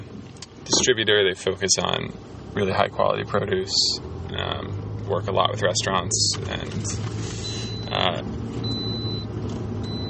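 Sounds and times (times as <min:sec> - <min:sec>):
low rumble of the car driving: 0:00.0 - 0:10.0
speech: 0:00.8 - 0:08.7
car passenger seatbelt warning alarm chime: 0:07.4 - 0:10.0.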